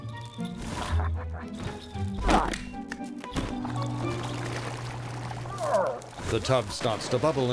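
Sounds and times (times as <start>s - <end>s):
heavy block of ice dropping and cracking paving: 0.0s - 7.5s
steady music: 0.0s - 7.5s
speech: 6.3s - 7.5s.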